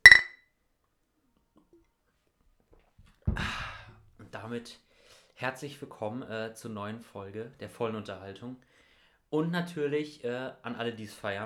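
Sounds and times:
glasses clinking in a toast: 0.1 - 0.3
speech: 4.4 - 8.7, 9.3 - 11.4
soft breathy exhale: 4.9 - 5.4, 8.7 - 9.2.

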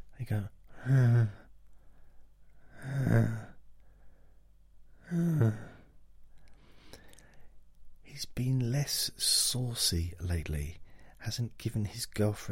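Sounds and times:
speech: 0.2 - 1.4, 2.9 - 3.4, 5.1 - 5.6, 8.2 - 12.4
person imitating snoring: 0.8 - 1.5, 2.8 - 3.6, 5.0 - 5.8.

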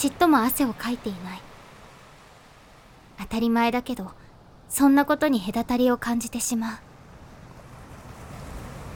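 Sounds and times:
speech: 0.0 - 1.5, 3.2 - 6.9
sea waves against a breakwater: 0.0 - 3.2, 6.9 - 8.9.

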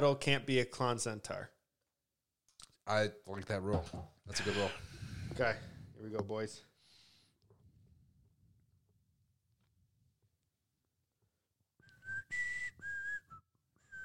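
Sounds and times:
speech: 0.0 - 1.6, 2.9 - 6.7
person whistling short notes: 11.8 - 14.0.

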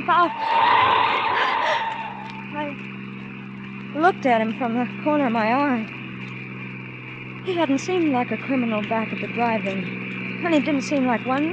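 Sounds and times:
speech: 0.0 - 1.9, 3.9 - 6.0, 7.4 - 11.5
car tires screeching in a skid while swerving: 0.0 - 3.4
car engine low rumble: 0.0 - 11.5.

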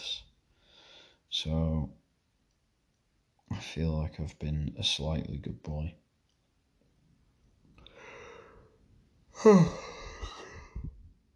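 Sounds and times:
speech: 1.4 - 2.0, 3.5 - 6.0, 9.4 - 10.0
person yawning: 9.4 - 10.8.

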